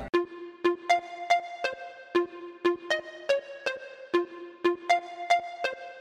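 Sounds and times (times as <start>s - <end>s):
bouncy run of short plucked musical notes: 0.1s - 5.9s.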